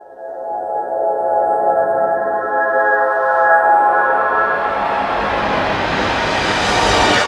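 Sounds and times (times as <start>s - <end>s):
synth pads in A flat: 0.6s - 7.2s.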